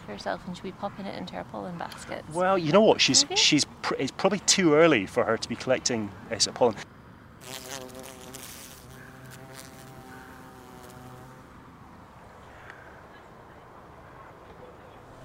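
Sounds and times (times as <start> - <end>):
speech: 0.1 - 6.8
steady background hiss: 1.3 - 14.3
buff-tailed bumblebee queen wing buzz hovering above crocuses in urban park: 7.4 - 11.6.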